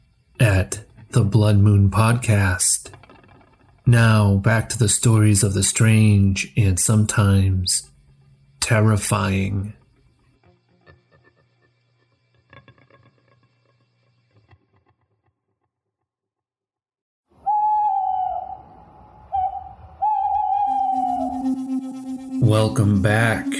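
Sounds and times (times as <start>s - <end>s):
speech: 0.4s - 3.0s, 3.9s - 7.9s, 8.7s - 9.8s, 22.5s - 23.5s
low hum: 17.4s - 23.5s
owl hooting: 17.4s - 23.5s
low droning tone: 19.3s - 23.5s.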